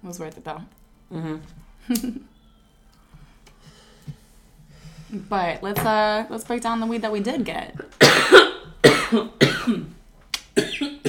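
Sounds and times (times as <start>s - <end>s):
speech: 0.0s - 2.3s, 5.1s - 8.4s, 9.1s - 9.9s
person coughing after a hit of weed: 8.0s - 10.0s, 10.6s - 11.0s.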